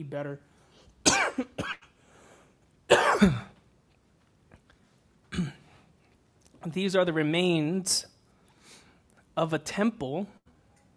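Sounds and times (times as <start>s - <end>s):
speech: 0.0s - 1.8s, 2.9s - 3.5s, 6.6s - 8.1s, 9.4s - 10.4s
speaker coughing during a religious talk: 1.0s - 2.0s, 2.9s - 3.6s, 5.3s - 5.8s.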